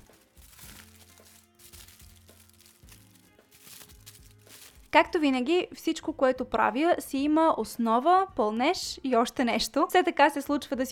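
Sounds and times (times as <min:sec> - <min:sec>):
aluminium foil crinkling as it is folded around a cake pan: 0:00.0 - 0:05.2
soft music: 0:00.0 - 0:10.8
speech: 0:04.9 - 0:10.8.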